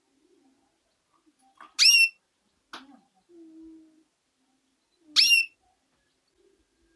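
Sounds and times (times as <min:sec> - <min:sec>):
female canary giving bright down-slurred calls: 0:01.6 - 0:02.2, 0:05.1 - 0:05.8.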